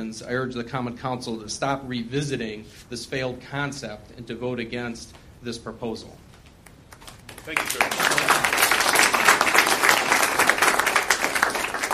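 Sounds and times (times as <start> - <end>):
speech: 0.0 - 6.2, 7.4 - 8.0
roomful of people applauding after a speaker: 6.9 - 11.9.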